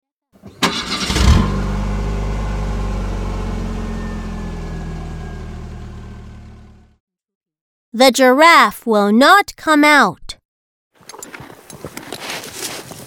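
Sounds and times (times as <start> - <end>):
car engine cranking, starting and idling: 0.4 - 7.0
speech: 8.0 - 10.2.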